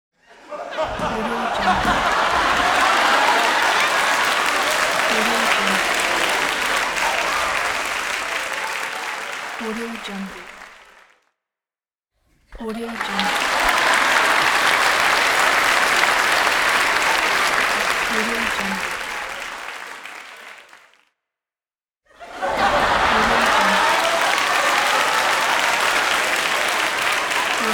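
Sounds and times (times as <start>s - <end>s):
laughter: 0.2s - 10.7s, 12.9s - 20.4s, 22.1s - 27.7s
audience applauding: 0.5s - 11.2s, 12.6s - 21.1s, 22.2s - 27.7s.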